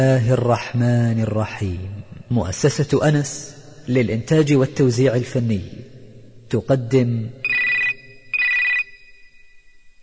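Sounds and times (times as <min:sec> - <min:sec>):
speech: 0:00.0 - 0:05.8, 0:06.5 - 0:07.4
telephone ringing with electronic trilling: 0:07.4 - 0:09.5.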